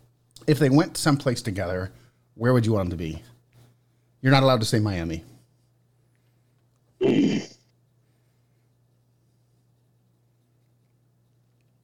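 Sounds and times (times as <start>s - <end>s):
faint low hum: 0.0s - 11.8s
speech: 0.5s - 3.3s, 4.2s - 5.3s
person sneezing: 7.0s - 7.6s.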